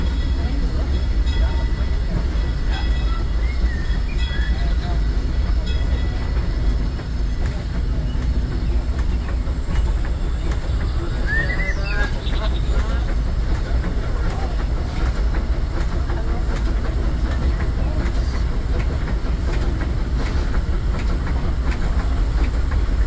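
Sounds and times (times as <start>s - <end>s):
mine train roller coaster wheels clattering on track: 0.0s - 23.0s
theme-park mine train roller coaster rumbling roar: 0.0s - 23.0s
roller coaster hissing and squealing: 0.1s - 15.8s.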